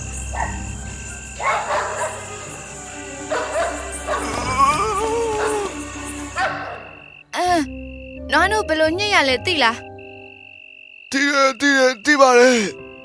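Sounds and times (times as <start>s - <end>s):
insect chirping: 0.0s - 13.0s
dogs barking at cats: 0.3s - 0.7s, 1.4s - 2.6s, 3.2s - 7.0s
dogs whining: 3.3s - 6.8s
speech: 8.4s - 9.9s, 11.2s - 12.8s.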